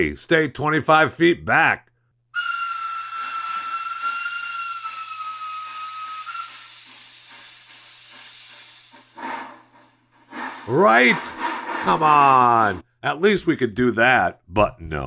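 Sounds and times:
speech: 0.0 - 2.5, 10.7 - 15.0
steam locomotive whistle blowing a long shriek: 2.4 - 9.2
hissing rush of steam: 2.4 - 12.8.

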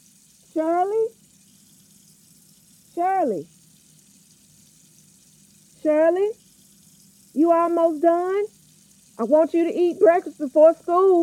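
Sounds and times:
steady stream of water running from a faucet: 0.0 - 11.2
speech: 0.6 - 1.2, 3.0 - 3.6, 5.8 - 6.4, 7.4 - 8.6, 9.2 - 11.2.

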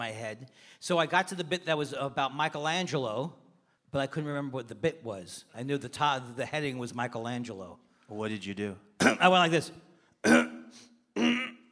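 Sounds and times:
speech: 0.0 - 10.9
person clearing throat with rough coughs: 9.0 - 9.3, 10.2 - 11.7.

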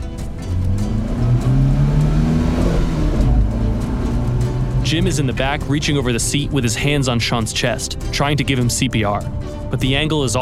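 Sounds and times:
car engine revving and accelerating away: 0.0 - 7.7
speech: 4.9 - 10.4.

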